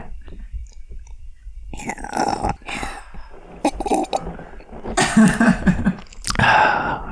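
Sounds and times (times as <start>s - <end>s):
person swallowing wine: 0.2s - 6.7s
person slurping and sipping wine with wet mouth noises: 1.8s - 6.4s
laughter: 4.8s - 6.1s.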